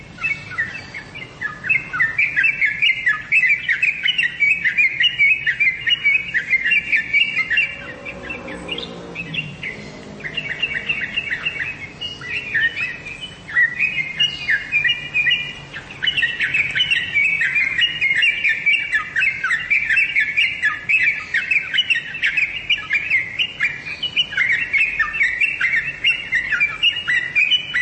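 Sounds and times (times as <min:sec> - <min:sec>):
birds chirping and twittering: 0:00.0 - 0:27.8
low rumble: 0:07.3 - 0:13.5.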